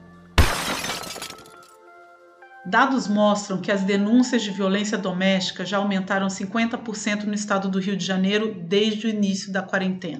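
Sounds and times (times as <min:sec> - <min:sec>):
glass shattering with a loud crash: 0:00.4 - 0:01.8
speech: 0:02.6 - 0:10.1.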